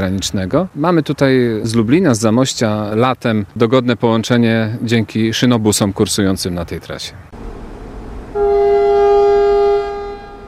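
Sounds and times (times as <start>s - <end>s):
speech: 0.0s - 7.6s
railbus horn blast at a station: 8.3s - 10.4s.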